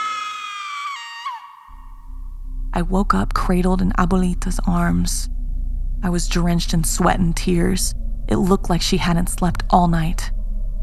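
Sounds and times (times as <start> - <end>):
piercing high-pitched blood-curdling scream: 0.0 - 1.9
low rumbling hum: 1.7 - 10.8
speech: 2.8 - 5.4, 6.0 - 10.4.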